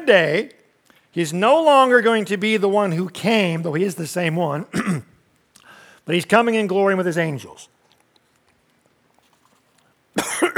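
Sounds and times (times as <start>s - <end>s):
speech: 0.1s - 0.6s, 1.2s - 5.1s, 6.1s - 7.7s
man coughing after swallowing wrong: 4.7s - 5.2s, 10.2s - 10.5s.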